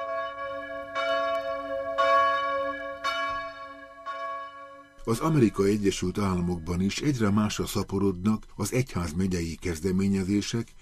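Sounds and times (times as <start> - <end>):
church bell in Chicago tolling for common prayer: 0.0 - 6.6
speech: 5.0 - 10.8.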